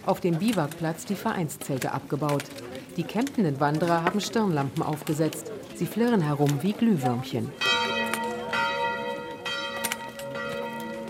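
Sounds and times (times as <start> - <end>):
speech: 0.0 - 7.8
church bells ringing at seven in the morning: 7.0 - 11.0.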